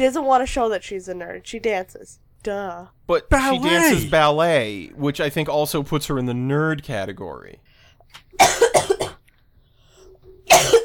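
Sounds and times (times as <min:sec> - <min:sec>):
speech: 0:00.0 - 0:08.6
harsh coughing: 0:08.4 - 0:09.2, 0:10.5 - 0:10.8.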